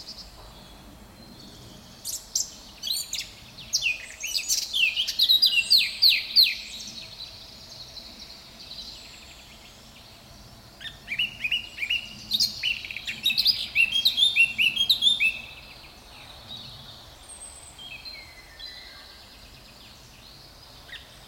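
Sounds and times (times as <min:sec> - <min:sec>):
Eurasian blackcap Sylvia atricapilla singing: 0:02.1 - 0:07.0, 0:10.8 - 0:15.7.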